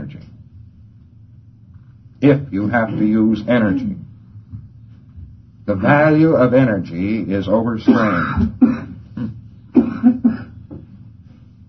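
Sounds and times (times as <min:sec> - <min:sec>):
speech: 0:02.2 - 0:04.1, 0:05.7 - 0:08.8
audience member coughing harshly: 0:07.8 - 0:10.6.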